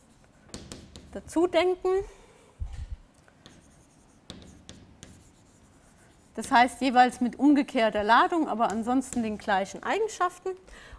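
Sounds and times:
writing on a board during a physics lecture: 0.0 - 1.4, 3.4 - 6.9
speech: 1.2 - 2.2, 6.4 - 10.9.

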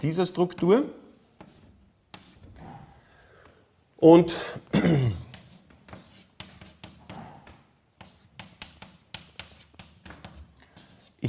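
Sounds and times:
speech: 0.0 - 1.0, 4.0 - 5.2
handwriting scratching strokes drawing a chemical structure: 1.3 - 2.9, 5.2 - 11.2.

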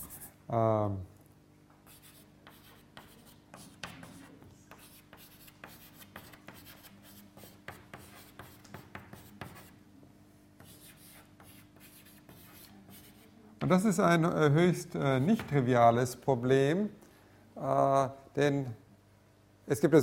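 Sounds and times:
handwriting strokes during a lecture: 0.0 - 0.3, 1.8 - 9.8, 10.6 - 13.3
speech: 0.5 - 1.1, 13.7 - 17.0, 17.6 - 18.8, 19.7 - 20.0.

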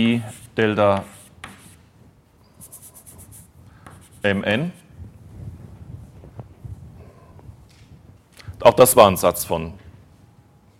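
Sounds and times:
speech: 0.0 - 1.2, 4.2 - 4.8, 8.6 - 9.8
writing strokes on a board during a lecture: 0.0 - 1.8, 2.5 - 4.9.

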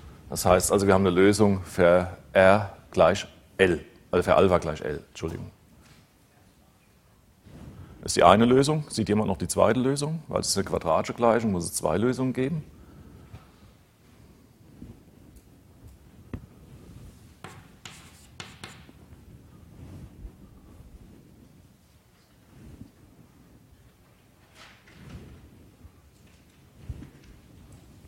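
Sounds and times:
speech: 0.3 - 5.6, 8.0 - 12.8
chalk writing on a board during a maths lecture: 17.4 - 19.0.

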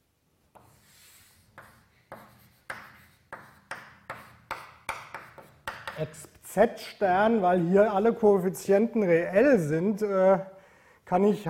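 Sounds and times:
writing on a board during a maths lecture: 0.5 - 6.2
speech: 6.0 - 11.4.

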